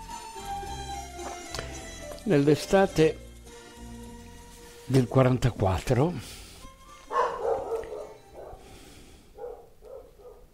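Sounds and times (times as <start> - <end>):
speech: 2.3 - 3.2, 4.9 - 6.4
dog barking: 7.1 - 8.7, 9.3 - 10.5.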